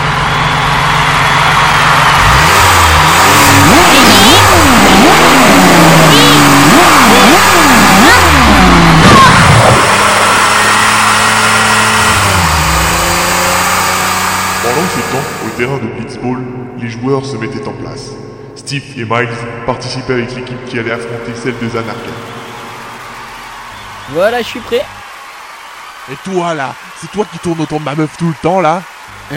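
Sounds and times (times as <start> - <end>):
car with a DeLorean engine revving and idling: 0.0 - 29.3
speech: 15.6 - 22.4, 24.1 - 25.0, 26.1 - 29.3.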